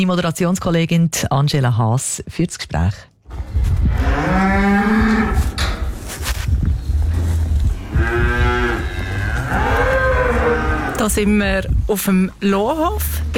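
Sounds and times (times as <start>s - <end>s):
speech: 0.0s - 3.1s, 11.1s - 13.3s
cows mooing in a barn as they are brought in from pasture: 3.9s - 5.8s, 7.0s - 11.2s.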